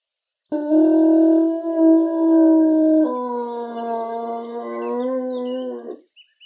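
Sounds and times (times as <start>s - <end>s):
long eerie bloodcurdling howl: 0.6s - 6.0s.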